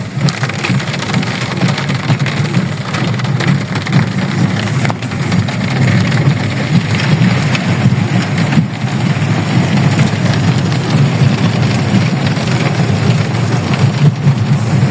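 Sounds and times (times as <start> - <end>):
heavy rain on a dirt road leading to a house: 0.0 - 14.8.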